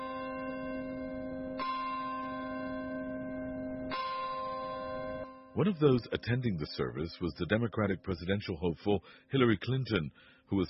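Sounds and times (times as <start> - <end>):
deep church bell tolling: 0.0 - 7.2
speech: 5.6 - 10.6.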